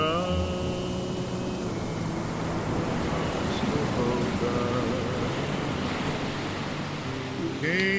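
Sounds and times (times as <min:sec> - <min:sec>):
faint tonal sounds: 0:00.0 - 0:07.9
ocean surf washing against the shore: 0:00.0 - 0:07.9.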